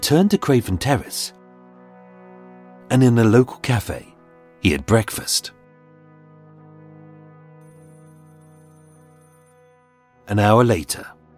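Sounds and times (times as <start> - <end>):
speech: 0.0 - 1.4, 2.9 - 5.6, 10.3 - 11.2
telephone ringing: 7.6 - 9.9.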